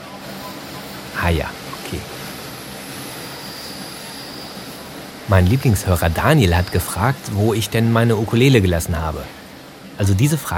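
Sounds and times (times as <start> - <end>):
faint high-pitched train wheel tones: 0.0 - 7.2
S-Bahn commuter train rumbling in motion heard from inside the carriage: 0.0 - 10.5
speech: 1.2 - 2.2, 5.3 - 9.4, 10.0 - 10.5.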